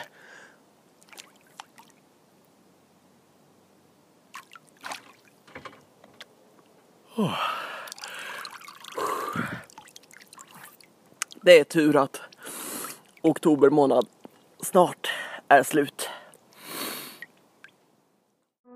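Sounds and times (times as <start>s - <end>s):
soft drips on a misty lake: 1.0s - 2.0s, 4.3s - 5.6s, 7.6s - 14.7s, 17.2s - 17.9s
head plunging into cold lake water: 4.3s - 5.4s, 7.8s - 10.9s
sharp gasping breaths: 7.1s - 9.7s
speech: 7.2s - 7.5s, 11.4s - 12.2s, 13.2s - 16.0s.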